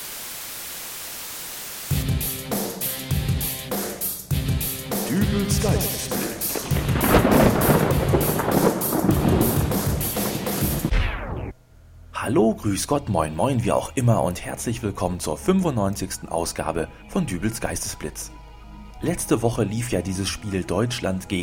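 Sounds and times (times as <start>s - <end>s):
rain: 0.0s - 1.9s, 6.5s - 10.9s
pulsing rhythmic musical backdrop: 1.9s - 10.9s
speech: 5.1s - 6.2s, 12.3s - 18.4s, 19.0s - 21.4s
rolling thunder: 5.6s - 11.5s.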